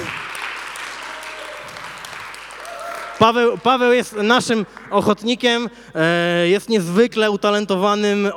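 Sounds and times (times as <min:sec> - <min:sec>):
audience applause with many hands clapping: 0:00.0 - 0:05.4
speech: 0:03.2 - 0:08.3.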